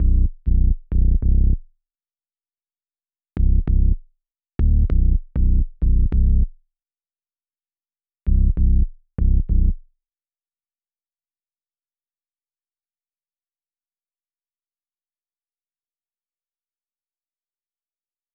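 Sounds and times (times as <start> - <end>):
West Coast bass melody loop in E minor at 98 BPM: 0.0 - 1.6, 3.4 - 4.0, 4.6 - 6.5, 8.3 - 9.8.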